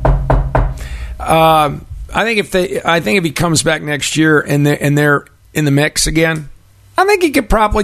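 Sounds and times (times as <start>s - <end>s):
knocking on wood: 0.0s - 0.8s
speech: 1.2s - 7.8s.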